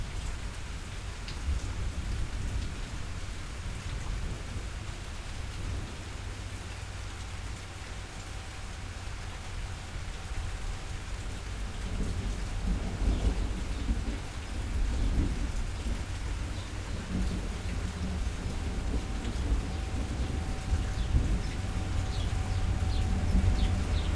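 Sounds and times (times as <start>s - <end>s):
deep continuous rumble: 0.0s - 24.1s
rain falling: 0.0s - 24.1s
faint steady tone humming: 4.9s - 24.1s.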